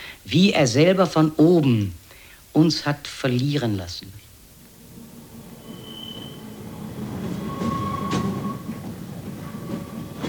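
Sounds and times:
speech: 0.3s - 2.0s, 2.6s - 4.2s
yellow tram rumbling through a foggy wet street: 4.3s - 10.2s
tram wheel squeal: 4.7s - 10.2s.

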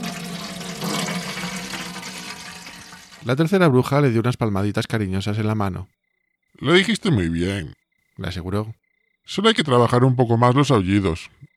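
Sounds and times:
boiling water pouring from a cauldron into a teapot: 0.0s - 3.4s
speech: 3.2s - 6.0s, 6.6s - 11.5s.

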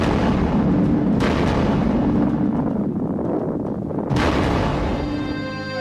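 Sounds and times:
explosion sound effect portraying an atomic bombing: 0.0s - 5.7s.

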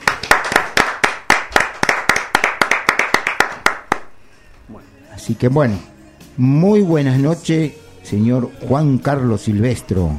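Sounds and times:
applause at an evening program: 0.0s - 4.1s
speech: 5.3s - 10.1s.

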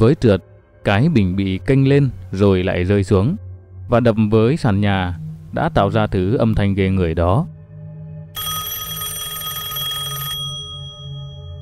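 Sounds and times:
speech: 0.0s - 7.5s
metallic telephone bell ringing: 8.4s - 11.6s.

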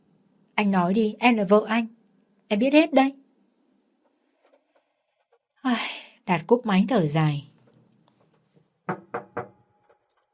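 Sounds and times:
speech: 0.6s - 3.2s, 5.6s - 7.5s
knocking on a door: 8.9s - 10.1s.

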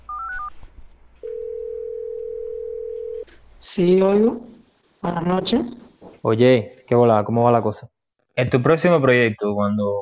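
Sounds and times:
Telegram app call ringing tone: 1.2s - 3.3s
speech: 3.6s - 9.9s.

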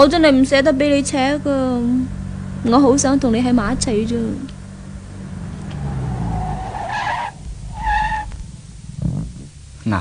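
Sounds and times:
speech: 0.0s - 4.5s
sports car low engine rumble: 0.0s - 9.9s
sports car tyres squealing while braking at a street corner: 5.4s - 8.5s.

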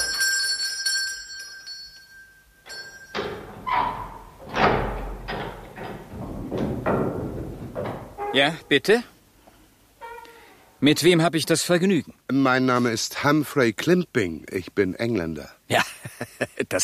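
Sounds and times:
rusty bell pull rung at the gate of an old villa: 0.0s - 3.5s
dull thumps and rattles: 3.1s - 8.7s
speech: 8.4s - 9.1s, 10.8s - 16.8s.

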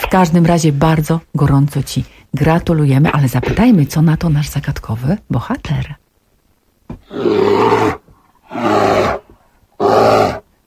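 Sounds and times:
speech: 0.1s - 6.0s
bear roaring: 7.0s - 10.5s.

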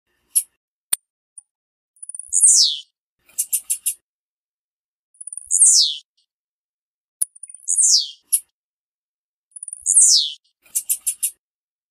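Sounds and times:
Blue-black grassquit female squeaky descending calls: 2.1s - 4.0s, 5.2s - 6.1s, 7.4s - 8.4s, 9.6s - 11.4s.

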